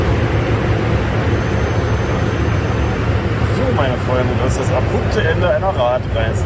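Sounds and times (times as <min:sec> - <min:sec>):
aircraft cabin roar on an ambulance flight home to Saarbrücken: 0:00.0 - 0:06.4
speech: 0:04.1 - 0:06.4.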